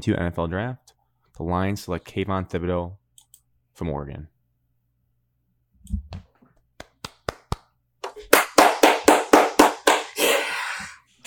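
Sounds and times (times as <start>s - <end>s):
speech: 0.0s - 3.0s, 3.8s - 4.3s, 5.8s - 6.3s
hands clapping: 6.8s - 10.2s.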